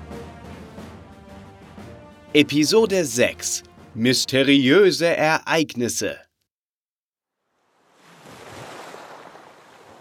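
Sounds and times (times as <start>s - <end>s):
speech: 2.3s - 6.2s
ocean waves on the open North Atlantic between France and Spain: 7.6s - 9.9s.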